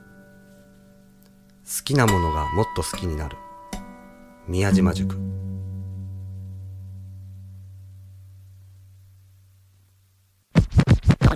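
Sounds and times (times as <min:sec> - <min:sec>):
speech: 0:01.7 - 0:03.5, 0:04.5 - 0:05.3
low droning bass tone: 0:04.5 - 0:09.3
vinyl record scratching on a turntable: 0:10.5 - 0:11.3.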